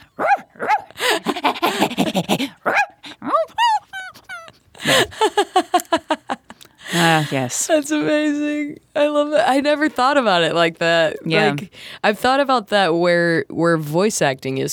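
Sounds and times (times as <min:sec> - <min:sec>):
laughter: 0:00.9 - 0:07.4
puppeteer imitating dog barks and yelps: 0:02.3 - 0:04.2, 0:11.3 - 0:11.6
speech: 0:07.3 - 0:14.7.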